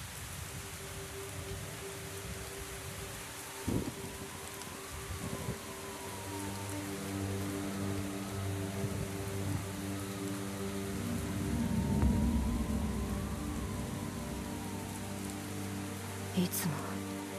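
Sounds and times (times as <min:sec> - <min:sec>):
steady rain pattering on a surface: 0:00.0 - 0:17.3
low rumbling swell: 0:08.1 - 0:16.3
speech: 0:16.4 - 0:16.8.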